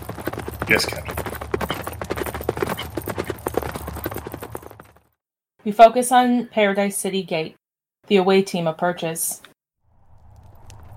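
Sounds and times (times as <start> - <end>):
hooves of several ridden horses clip-clopping on a hard desert surface: 0.0 - 5.1
speech: 0.7 - 1.3, 5.7 - 9.5
low rumbling background: 9.8 - 10.9.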